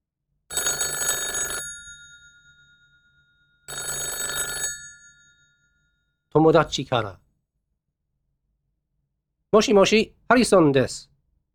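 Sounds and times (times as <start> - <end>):
telephone bell ringing with a call from a friend: 0.5 - 6.2
speech: 6.3 - 7.2, 9.5 - 11.1.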